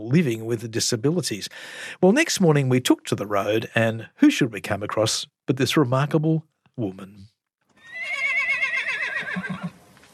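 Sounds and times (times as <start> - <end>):
speech: 0.1 - 7.3, 9.4 - 9.7
horse whinnying: 7.8 - 9.8.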